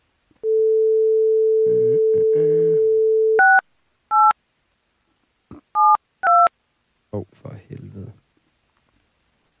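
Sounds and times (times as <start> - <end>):
phone dial tone: 0.4 - 3.6.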